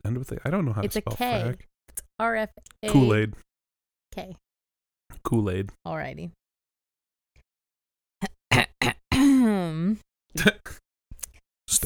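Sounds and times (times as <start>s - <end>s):
speech: 0.0s - 3.5s, 4.2s - 4.4s, 5.2s - 6.4s, 9.4s - 10.8s
person clearing throat: 8.2s - 9.5s, 10.4s - 10.8s.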